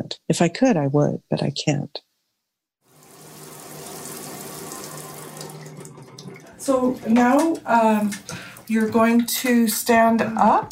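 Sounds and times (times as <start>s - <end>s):
speech: 0.0s - 2.1s, 6.6s - 10.7s
running water pouring steadily: 2.8s - 10.7s.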